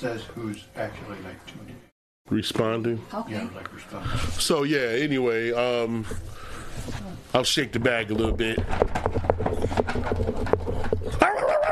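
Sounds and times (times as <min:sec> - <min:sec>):
speech: 0:00.0 - 0:09.3, 0:09.9 - 0:11.4
dog yelping into a thin whine: 0:11.2 - 0:11.7.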